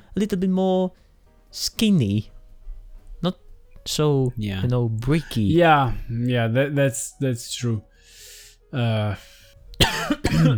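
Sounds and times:
speech: 0.2 - 2.4, 3.2 - 10.5
brief voiced throat clearing: 9.8 - 10.5
sudden sharp cough: 9.8 - 10.5.

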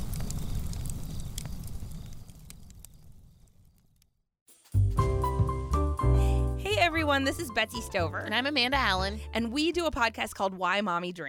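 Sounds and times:
campfire crackling: 0.0 - 4.7
music: 4.5 - 10.8
speech: 7.1 - 11.2.

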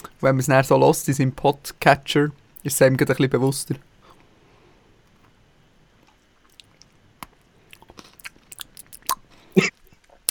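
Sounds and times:
speech: 0.2 - 3.9
wet smacking and crunching while eating: 6.1 - 7.0, 7.7 - 9.3
mouth clicks: 7.7 - 10.2.

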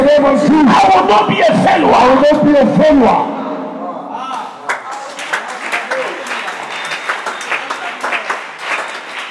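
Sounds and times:
speech: 0.2 - 3.4
congregation clapping at an evangelical prayer service: 4.3 - 9.2.

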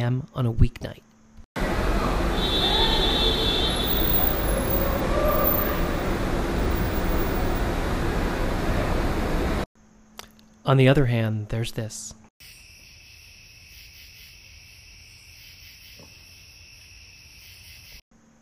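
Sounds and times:
speech: 0.0 - 1.1, 10.7 - 12.5
vehicle traffic echoing through a busy airport parking garage: 1.6 - 9.6
cicadas buzzing in a garden on a summer night: 2.2 - 7.8, 12.4 - 18.0
high-pitched squeal: 2.5 - 7.7.

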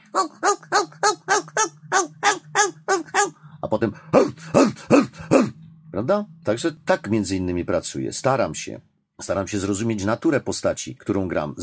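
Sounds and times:
actor imitating a dog barking: 0.0 - 3.4, 4.1 - 5.6
speech: 0.2 - 1.2, 3.8 - 4.3, 6.1 - 11.6.

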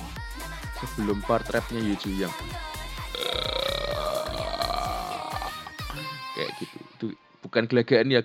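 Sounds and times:
speech: 0.8 - 2.6, 6.4 - 8.2
voice imitating a door sound from a song: 3.1 - 6.6.

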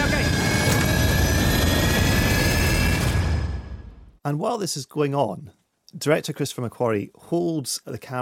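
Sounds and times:
airplane engine roaring with high whine during takeoff: 0.0 - 4.2
speech: 4.2 - 8.1.

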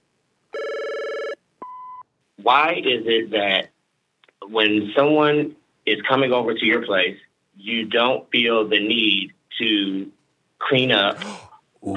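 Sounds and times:
telephone ringing with electronic tone: 0.5 - 1.8
speech: 2.4 - 3.7, 4.5 - 11.9.

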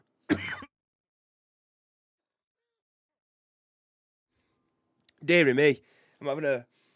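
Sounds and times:
short rough throat-clearing cough: 0.3 - 0.7
speech: 5.2 - 6.8.

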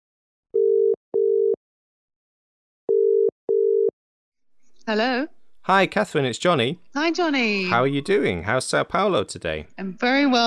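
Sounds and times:
telephone ringback tone while placing a call: 0.6 - 1.6, 2.9 - 3.9
speech: 4.9 - 10.4.

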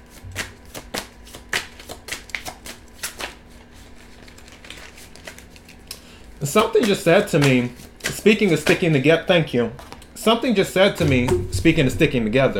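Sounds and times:
stiff tarot cards being shuffled and handled: 0.0 - 9.0
speech: 6.4 - 12.5.

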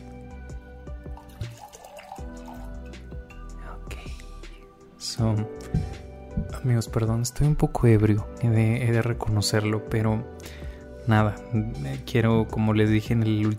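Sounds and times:
wine pouring into a glass: 1.0 - 3.0
speech: 5.0 - 10.4, 11.1 - 13.5.

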